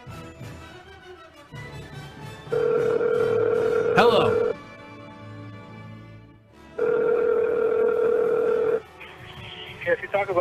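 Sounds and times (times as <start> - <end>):
phone line ringback tone on an outgoing call: 2.5 - 4.6, 6.8 - 8.8
voice talking over the phone line: 3.8 - 4.6.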